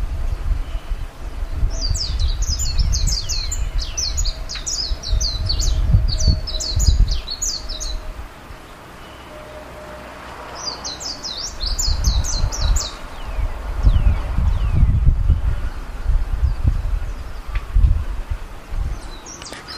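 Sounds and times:
low rumbling noise: 0.0 - 19.7
Japanese white-eye chirping: 0.5 - 15.4.

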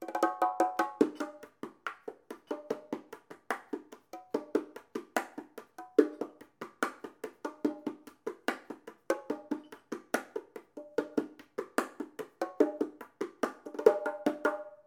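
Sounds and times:
bongo pattern: 0.0 - 14.8.

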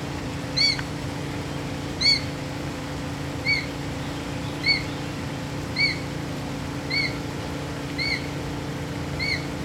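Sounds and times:
steady low hum: 0.0 - 9.6
Ornate Hawk-Eagle calling with clear whistled notes: 0.6 - 0.8, 2.0 - 2.3, 3.4 - 3.7, 4.5 - 5.0, 5.8 - 6.1, 6.9 - 7.2, 8.0 - 8.3, 9.2 - 9.5.

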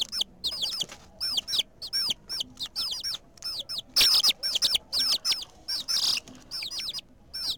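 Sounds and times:
flock of chicks cheeping: 0.0 - 7.5.

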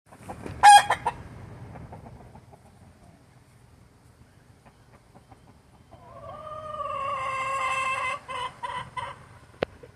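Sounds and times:
rooster clucking: 0.1 - 3.3, 4.6 - 9.9.

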